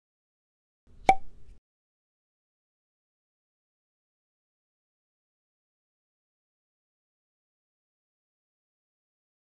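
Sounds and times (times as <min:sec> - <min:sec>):
cork popping from wine bottles: 0:01.0 - 0:01.4.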